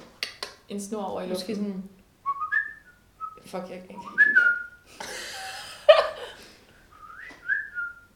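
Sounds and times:
speech: 0.7s - 2.0s, 3.4s - 4.5s
person making a clumsy whistling attempt with breathy blowing: 2.3s - 3.4s, 4.0s - 4.8s, 6.9s - 8.1s.

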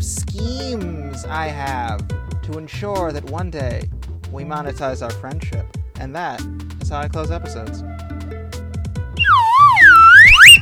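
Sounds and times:
speech: 0.4s - 8.0s
whistle blown in long wavering note: 9.2s - 10.5s.

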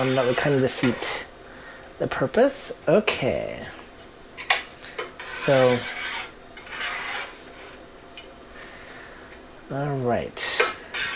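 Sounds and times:
speech: 0.0s - 1.3s, 2.0s - 3.8s, 5.5s - 6.0s, 9.7s - 10.5s
spoon scraping broccoli in sauce from a pan onto a plate: 5.2s - 7.8s, 10.9s - 11.1s.

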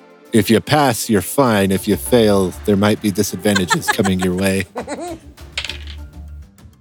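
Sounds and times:
speech: 0.3s - 5.2s
laughter: 2.9s - 5.2s
dice rolling on a hard tabletop for a Constitution check: 5.6s - 6.1s.

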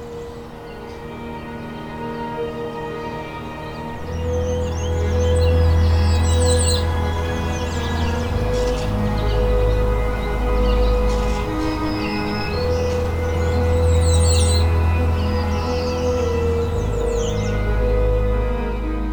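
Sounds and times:
migrant warblers and resident songbirds singing in a cemetery on a harbour shore: 0.0s - 19.1s.

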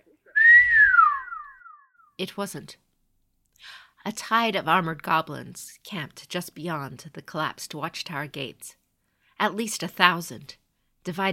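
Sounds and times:
person whistling a descending tone: 0.4s - 1.9s
speech: 2.2s - 2.8s, 3.6s - 8.8s, 9.4s - 11.3s.

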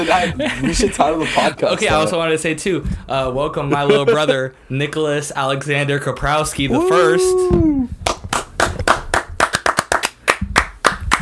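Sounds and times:
speech: 0.0s - 8.0s
one person clapping hands: 8.1s - 11.2s.

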